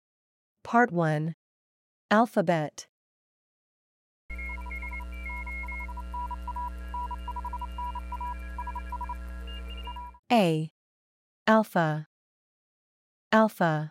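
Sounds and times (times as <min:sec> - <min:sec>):
speech: 0:00.7 - 0:01.4, 0:02.1 - 0:02.9, 0:10.3 - 0:10.8, 0:11.5 - 0:12.1, 0:13.3 - 0:13.8
constant low hum: 0:04.3 - 0:10.2
higher tone flickering: 0:04.3 - 0:10.2
steady electronic Morse code beeps in short and long pulses: 0:04.3 - 0:10.2.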